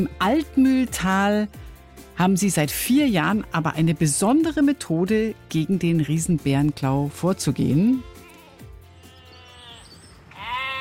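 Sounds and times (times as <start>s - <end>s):
speech: 0.0s - 8.1s
sheep and goats bleating: 7.5s - 10.7s.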